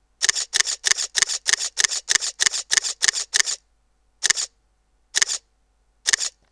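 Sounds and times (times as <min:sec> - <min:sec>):
Olympus E-410 camera shutter continuous shooting: 0:00.2 - 0:03.6, 0:04.2 - 0:04.5, 0:05.2 - 0:05.5, 0:06.1 - 0:06.4.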